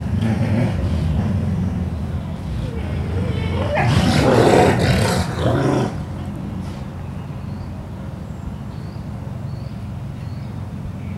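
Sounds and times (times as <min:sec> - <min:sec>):
grey wolves growling at each other: 0:00.0 - 0:07.2.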